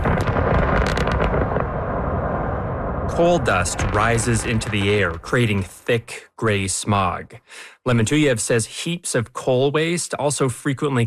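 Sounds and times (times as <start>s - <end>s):
open-pit mine blasting explosion beside villages in Russia: 0.0s - 5.9s
speech: 3.2s - 11.0s.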